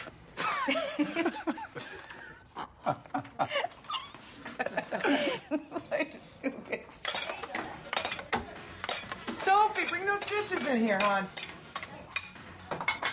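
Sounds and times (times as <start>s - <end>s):
people laughing softly: 0.4s - 6.9s
speech: 0.7s - 1.7s
dishes and utensils clinking and clattering in a kitchen: 6.8s - 13.1s.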